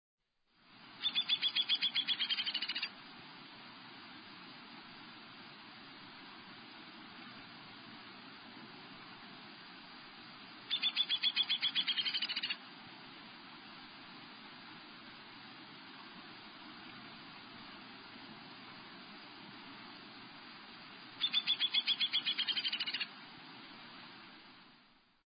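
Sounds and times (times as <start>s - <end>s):
Downy Woodpecker: 1.0s - 2.9s, 10.7s - 12.6s, 21.2s - 23.1s.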